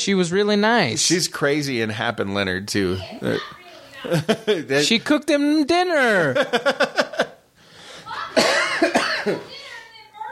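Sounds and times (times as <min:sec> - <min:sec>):
speech: 0:00.0 - 0:07.0, 0:09.2 - 0:09.5
laughter: 0:03.9 - 0:05.0, 0:06.0 - 0:07.4
person coughing loudly: 0:08.3 - 0:09.6.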